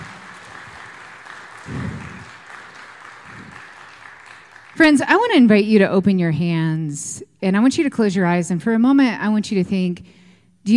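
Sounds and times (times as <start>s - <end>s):
audience applause: 0.0s - 5.2s
speech: 4.8s - 10.7s.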